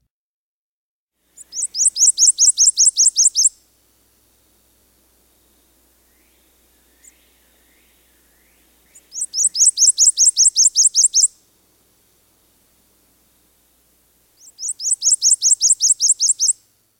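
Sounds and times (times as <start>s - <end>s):
Prothonotary Warbler singing: 1.4s - 3.6s, 5.3s - 11.4s, 14.4s - 16.6s.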